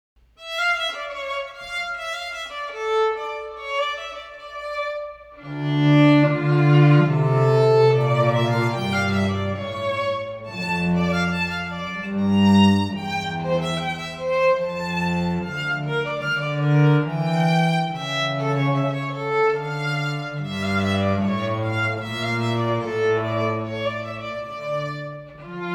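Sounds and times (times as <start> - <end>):
strings playing a rondeau: 0.4 - 25.7.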